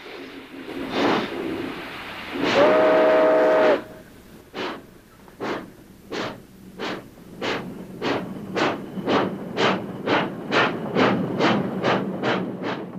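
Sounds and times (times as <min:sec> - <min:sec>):
steam freight locomotive hissing bursts: 0:00.0 - 0:12.9
steam freight locomotive whistle: 0:02.4 - 0:04.1.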